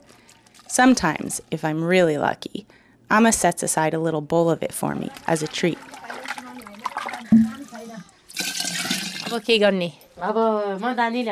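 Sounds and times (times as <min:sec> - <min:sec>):
speech: 0:00.8 - 0:06.0, 0:09.3 - 0:11.2
warm water pouring into a teko pot of fresh yogurt: 0:05.0 - 0:09.4.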